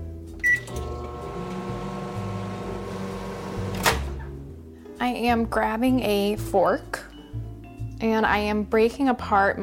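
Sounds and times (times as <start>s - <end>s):
microwave oven humming while thawing a frozen English muffin: 0.5s - 3.9s
speech: 5.0s - 7.1s, 8.0s - 9.6s.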